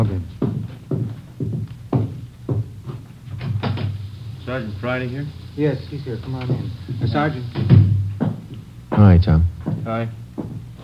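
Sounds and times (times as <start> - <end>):
speech: 0.0 - 0.4, 4.5 - 7.8, 9.0 - 10.2
knocking on a back door: 0.4 - 4.0, 6.4 - 10.7.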